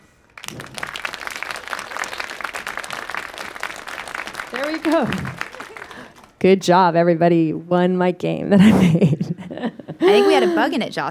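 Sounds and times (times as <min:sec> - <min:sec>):
audience clapping: 0:00.0 - 0:06.5
laughter: 0:00.5 - 0:06.3, 0:08.6 - 0:10.9
speech: 0:04.5 - 0:05.4, 0:06.4 - 0:11.0.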